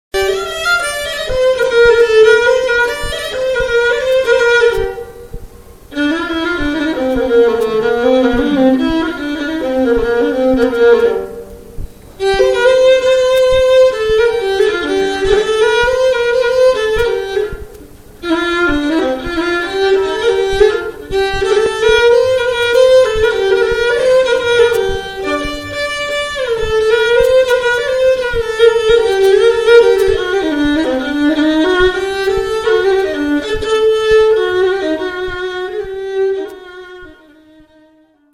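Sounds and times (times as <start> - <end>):
violin: 0.1 - 38.3.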